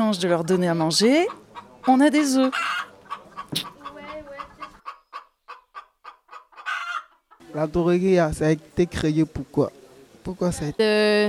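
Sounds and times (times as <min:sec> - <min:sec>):
hens clucking: 0:00.0 - 0:07.8
speech: 0:00.1 - 0:02.9, 0:03.5 - 0:03.7, 0:07.6 - 0:11.2
brief sharp knock: 0:03.5 - 0:03.8.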